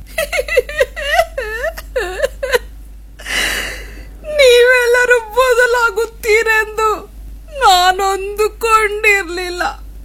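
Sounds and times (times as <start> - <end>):
woman crying while sitting outside a village: 0.0 - 9.2
woman's noisy breathy gasp: 3.2 - 4.2.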